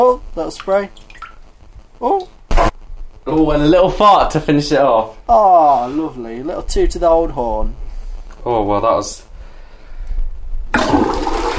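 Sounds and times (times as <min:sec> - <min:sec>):
speech: 0:00.0 - 0:01.1, 0:02.0 - 0:02.4, 0:03.3 - 0:07.8, 0:08.4 - 0:09.3
toilet flushing: 0:10.7 - 0:11.5.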